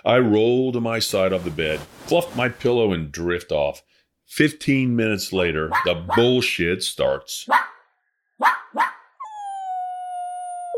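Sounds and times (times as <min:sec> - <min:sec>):
speech: 0:00.0 - 0:07.8
puppy barking in its cage: 0:05.7 - 0:06.4, 0:07.5 - 0:07.8, 0:08.4 - 0:09.1
puppy in its cage whining: 0:08.8 - 0:10.7.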